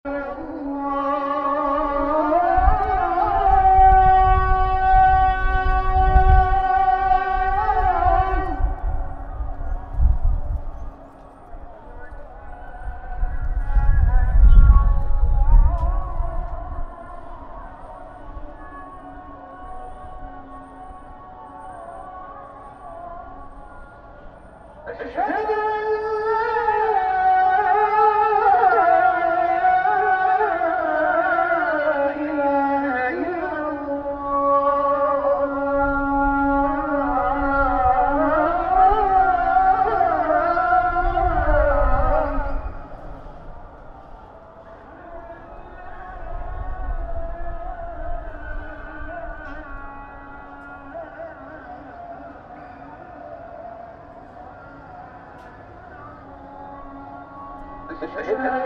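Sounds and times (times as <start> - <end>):
Blue Mosque call to prayer in Istanbul: 0.0 - 58.6.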